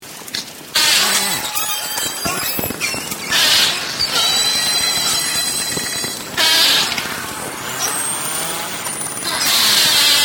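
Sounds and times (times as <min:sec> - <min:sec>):
beluga squeals and tonal whine: 0:00.8 - 0:10.2.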